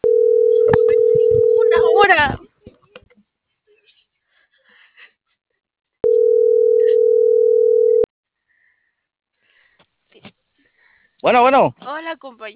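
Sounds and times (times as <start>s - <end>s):
ringback tone of an unanswered telephone call: 0.0s - 2.2s, 6.0s - 8.1s
speech: 11.3s - 12.5s.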